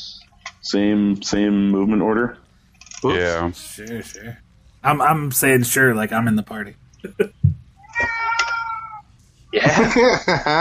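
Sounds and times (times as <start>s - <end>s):
speech: 0.7s - 2.4s, 3.0s - 8.3s, 9.5s - 10.5s
laughter: 7.1s - 7.3s, 9.6s - 10.5s
cat meowing: 7.8s - 9.0s.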